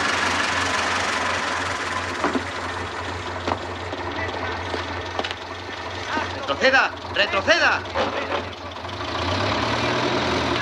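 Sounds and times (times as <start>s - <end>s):
small armored military vehicle engine idling at an alley entrance: 0.0s - 10.6s
faint clanks and thumps: 2.2s - 5.4s
speech: 6.6s - 8.4s.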